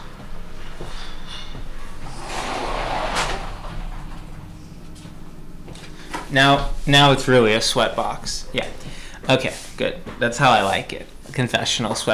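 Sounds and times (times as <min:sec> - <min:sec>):
faint knocks: 0:00.0 - 0:12.1
speech: 0:00.8 - 0:01.7, 0:06.3 - 0:12.1
door being pulled shut: 0:00.8 - 0:05.1.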